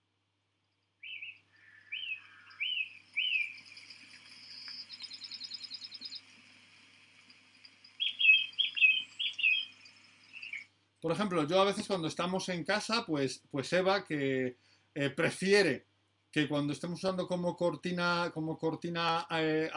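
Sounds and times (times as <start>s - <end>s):
faint insect-like hum: 0.5s - 16.2s
rapid bird trill: 0.9s - 10.8s
birds chirping: 0.9s - 12.5s
speech: 11.1s - 19.7s.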